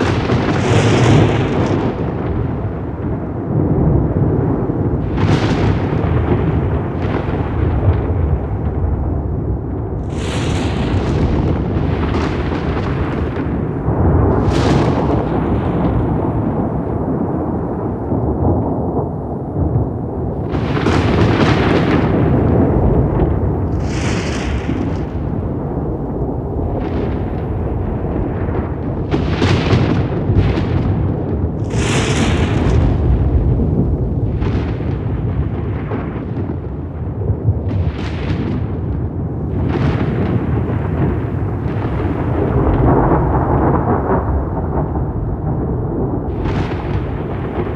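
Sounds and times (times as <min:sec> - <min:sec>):
thunder ambience: 0:00.0 - 0:47.7.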